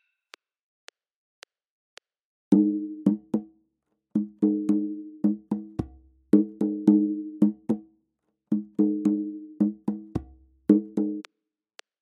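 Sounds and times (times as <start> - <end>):
music: 2.5 - 3.7, 4.2 - 11.3.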